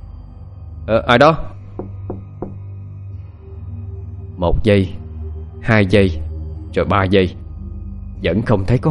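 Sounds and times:
speech: 0:00.8 - 0:01.5, 0:04.4 - 0:05.0, 0:05.6 - 0:07.4, 0:08.2 - 0:08.9
knocking on a toilet door: 0:01.8 - 0:02.6.

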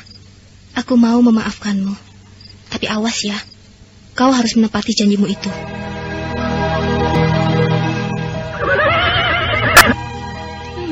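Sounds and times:
steady low hum: 0:00.0 - 0:10.9
speech: 0:00.8 - 0:02.1, 0:02.8 - 0:03.5, 0:04.2 - 0:05.8
horse neighing: 0:08.5 - 0:10.0.

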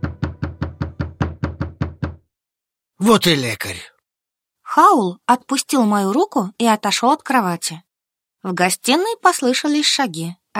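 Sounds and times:
loud knocking on a door: 0:00.0 - 0:02.3
speech: 0:03.0 - 0:03.9, 0:04.8 - 0:10.5.

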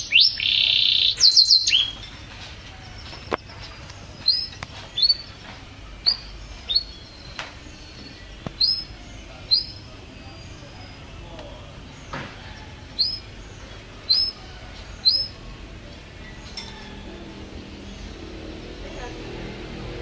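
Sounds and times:
canary bright trill: 0:00.0 - 0:11.2, 0:11.8 - 0:19.7
canary short high chirps and slurred notes: 0:00.0 - 0:15.6.

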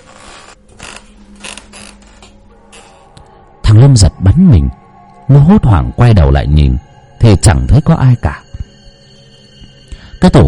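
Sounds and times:
wooden wardrobe door slowly creaking open: 0:00.0 - 0:03.2
speech: 0:03.8 - 0:08.4, 0:10.2 - 0:10.4.

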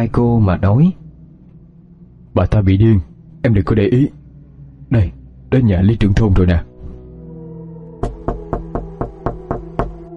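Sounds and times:
speech: 0:00.0 - 0:01.0, 0:02.4 - 0:04.2, 0:04.9 - 0:06.7
faint tonal background: 0:00.0 - 0:10.1
knocking on the wooden door of a village chief's house: 0:08.0 - 0:10.0.

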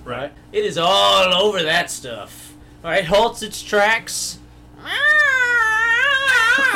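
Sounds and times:
speech: 0:00.1 - 0:05.1
person imitating a yowling cat in heat: 0:04.8 - 0:06.7.

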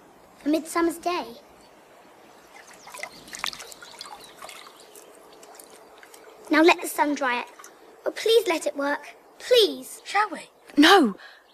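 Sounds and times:
speech: 0:00.4 - 0:01.5, 0:06.6 - 0:11.4
water splashing and dripping as someone washes their face: 0:02.4 - 0:07.9.

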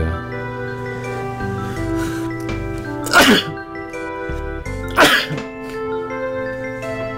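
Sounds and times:
music with sustained tones and a soft beat: 0:00.0 - 0:07.1
sharp breathy sneezes: 0:03.1 - 0:03.6, 0:04.9 - 0:05.4
speech: 0:03.2 - 0:03.5.

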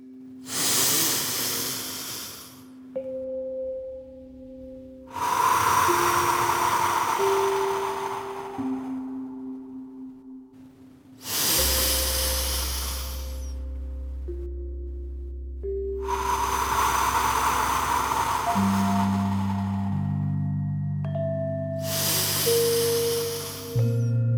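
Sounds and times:
gentle sustained musical tones: 0:00.0 - 0:24.3
slow deep breathing in through the nose and out through the mouth: 0:00.4 - 0:02.9, 0:05.1 - 0:09.8, 0:11.2 - 0:15.2, 0:16.0 - 0:20.6, 0:21.8 - 0:24.1.

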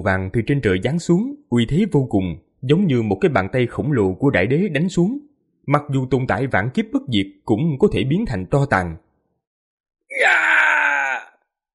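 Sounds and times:
speech: 0:00.0 - 0:09.0
terrified anguished scream: 0:10.1 - 0:11.4.

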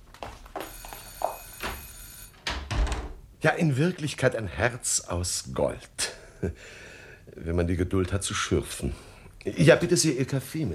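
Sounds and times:
telephone bell ringing: 0:00.6 - 0:02.4
speech: 0:03.4 - 0:10.7.

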